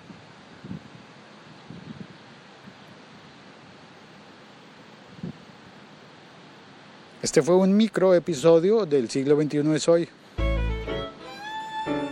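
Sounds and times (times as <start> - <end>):
nuclear power plant cooling tower releasing water vapour with hissing roar: 0.0 - 12.1
speech: 7.2 - 10.2.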